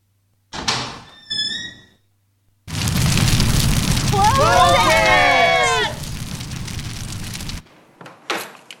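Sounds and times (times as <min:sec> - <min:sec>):
hot door slamming shut: 0:00.5 - 0:01.1
hot door creaking: 0:00.5 - 0:02.1
loud roaring rush behind a hot door: 0:02.7 - 0:07.6.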